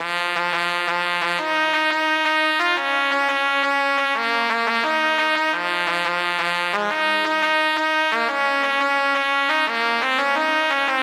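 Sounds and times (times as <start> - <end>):
trumpet melody: 0.0 - 11.0.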